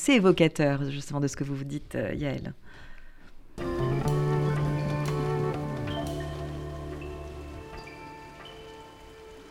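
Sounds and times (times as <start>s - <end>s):
speech: 0.0s - 2.9s
rain pattering against a window: 4.0s - 9.4s.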